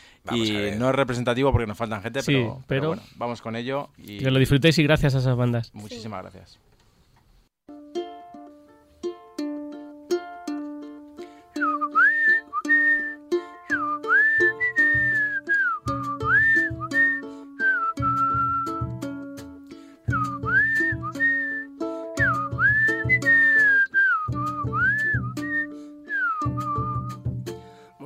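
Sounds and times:
speech: 0.2 - 6.7
bright whistled melody: 10.1 - 19.2, 20.0 - 27.8.

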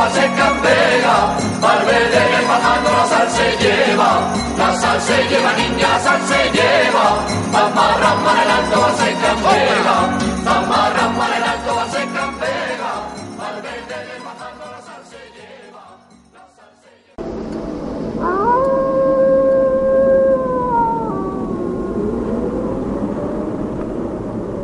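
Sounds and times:
music: 0.0 - 18.2
wolves howling: 18.1 - 23.6.

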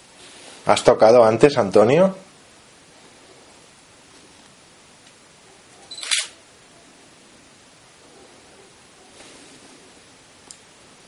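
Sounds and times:
quiet steady hiss: 0.0 - 11.0
speech: 0.6 - 2.2
camera shutter firing as photos are taken: 5.9 - 6.4.

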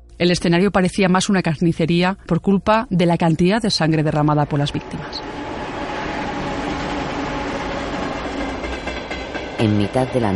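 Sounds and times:
speech: 0.2 - 5.4, 9.6 - 10.3
train pulling away at night from a rural village: 3.7 - 10.3
train wheels clickety-clack on rails: 4.9 - 10.3.

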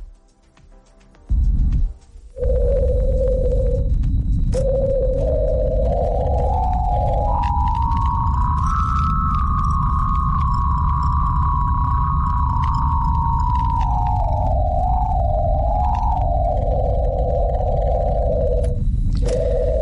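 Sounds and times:
steady low rumble of sonified Venus radio emission: 1.3 - 19.8
sonified natural radio emission from Venus atmosphere, sonar-like whistling tone: 2.5 - 19.8.

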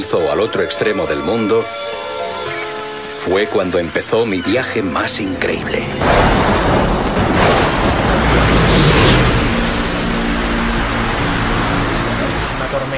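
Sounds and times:
speech: 0.0 - 2.3, 3.2 - 7.0
rough sea waves crashing: 5.4 - 12.9.

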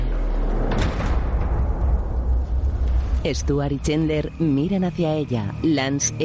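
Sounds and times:
heavy metal safe door closing: 0.0 - 3.2
low rumbling hum: 0.0 - 6.2
speech: 3.2 - 6.2.

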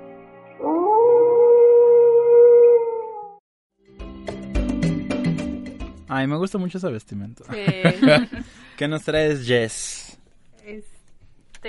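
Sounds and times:
wolf howling: 0.6 - 3.4
speech: 6.1 - 10.0, 10.7 - 10.9
laughter: 7.5 - 8.6.

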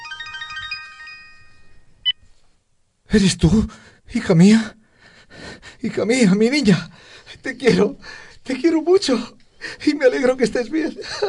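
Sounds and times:
phone ringtone of a bright melodic run of repeating electronic notes: 0.0 - 2.2
speech: 3.1 - 11.2.

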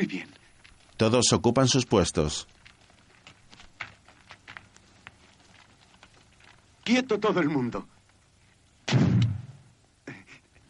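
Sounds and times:
speech: 1.0 - 2.6, 6.9 - 7.9
gunshots from a rider entering a Western town: 8.9 - 9.7.

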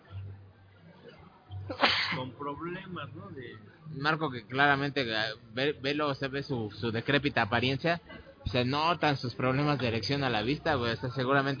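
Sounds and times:
person sneezing: 1.7 - 2.2
speech: 1.7 - 11.5.

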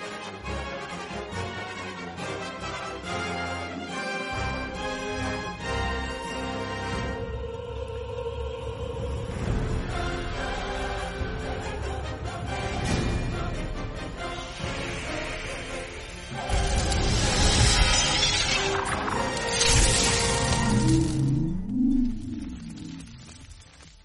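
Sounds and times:
video game music from a handheld console: 0.0 - 24.0.

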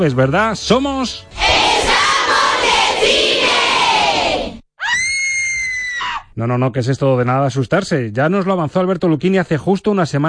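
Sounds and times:
speech: 0.0 - 1.4, 6.4 - 10.2
crowd screaming together: 1.6 - 6.2
single high sustained scream: 4.8 - 6.3.

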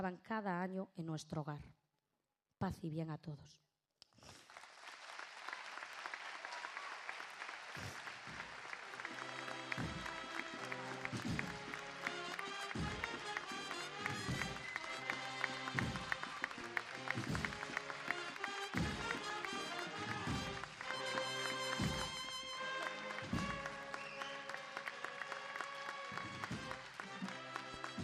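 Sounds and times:
speech: 0.0 - 1.8, 2.6 - 3.6
audience applause: 4.3 - 28.0
loud band music with evenly spaced drum beats: 8.4 - 24.0.

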